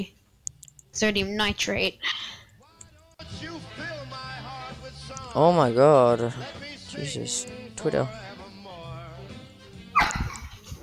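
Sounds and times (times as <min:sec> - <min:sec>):
speech: 0:00.0 - 0:00.2, 0:01.0 - 0:02.4, 0:05.3 - 0:08.3
dog whining: 0:10.0 - 0:10.8.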